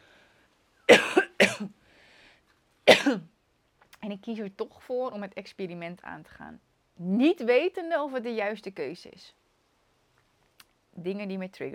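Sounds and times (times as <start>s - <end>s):
faint breath: 0.0s - 0.6s, 1.8s - 2.5s
loud coughs: 0.9s - 1.7s, 2.9s - 3.2s
speech: 3.0s - 3.3s, 4.0s - 9.4s, 11.0s - 11.7s.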